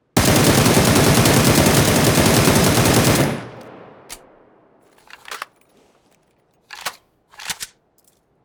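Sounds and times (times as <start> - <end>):
Beryl rifle full auto fire: 0.2 - 4.4.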